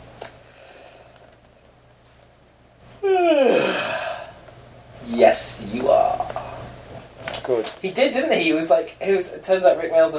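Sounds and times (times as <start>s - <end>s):
big loud breathy voiced yawn: 3.0s - 4.4s
speech: 5.2s - 6.4s, 7.5s - 10.1s.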